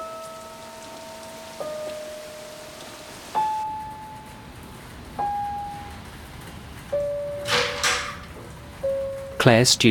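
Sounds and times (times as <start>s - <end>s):
steady rain pattering: 0.0s - 9.8s
door creaking open: 7.1s - 8.6s
door rattle: 7.2s - 8.7s
speech: 9.4s - 9.8s.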